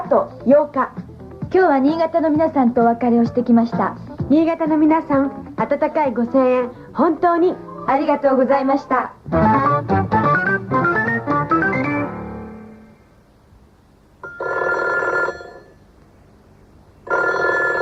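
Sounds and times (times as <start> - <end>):
speech: 0.1 - 9.6
melodic music: 9.3 - 12.9
telephone ringing: 14.2 - 15.8, 17.1 - 17.7.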